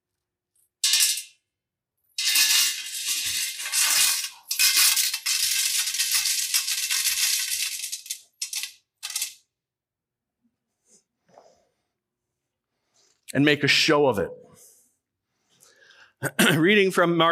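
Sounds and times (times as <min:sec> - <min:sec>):
handful of coins clattering into an offering collection box: 0:00.8 - 0:01.4, 0:02.2 - 0:09.4
speech: 0:13.3 - 0:14.4, 0:16.6 - 0:17.3.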